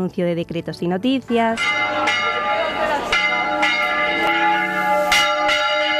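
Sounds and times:
speech: 0.0 - 2.3
church bells pealing: 1.3 - 5.9.

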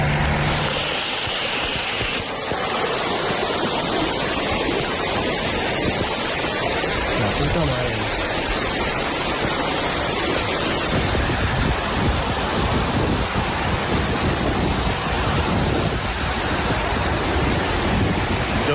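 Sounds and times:
rushing floodwater from an overflowed river near Requena Spain: 0.0 - 18.7.

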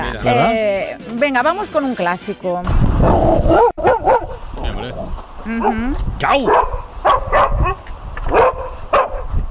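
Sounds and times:
speech: 0.1 - 4.2, 4.8 - 7.8
dog barking: 3.4 - 4.4, 6.4 - 9.3.

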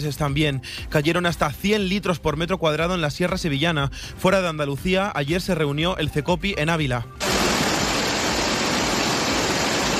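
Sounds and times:
speech: 0.0 - 7.3
swollen river rushing in flood: 7.2 - 9.9.

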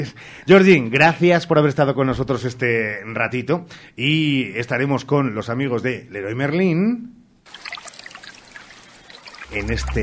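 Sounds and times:
speech: 0.0 - 7.8, 9.5 - 10.0
swimming pool water splashing and trickling: 7.5 - 10.0.

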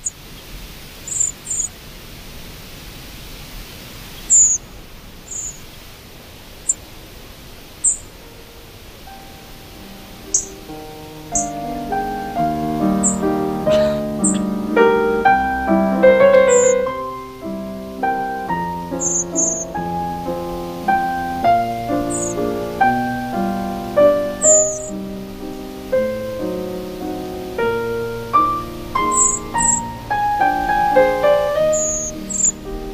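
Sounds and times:
quiet hiss: 0.0 - 32.9
flocks of thrushes, redwings and blackbirds calling overhead on nocturnal migration: 1.0 - 1.8, 4.0 - 6.0, 6.6 - 17.3, 18.1 - 32.9
soft tonal music: 8.9 - 32.9.

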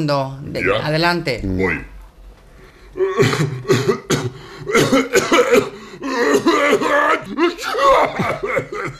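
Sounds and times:
speech: 0.0 - 1.9, 3.0 - 4.0, 4.7 - 8.9
person imitating a combined sneeze and cough: 3.1 - 8.9.

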